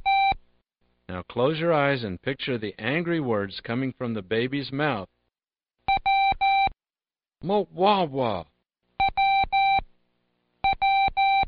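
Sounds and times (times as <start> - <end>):
Morse code keyer beeps spelling the letter W: 0.0 - 0.4, 5.9 - 6.8, 9.0 - 9.8, 10.6 - 11.4
speech: 1.1 - 5.1, 7.4 - 8.5.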